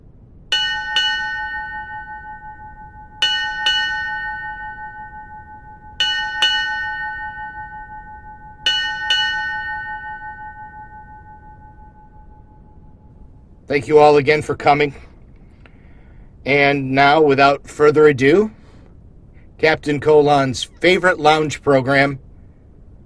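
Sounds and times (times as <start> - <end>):
faint low rumble: 0.0 - 23.0
ship's bell ringing eight bells: 0.5 - 15.1, 15.8 - 18.5
speech: 13.7 - 15.1, 16.5 - 18.6, 19.6 - 22.2.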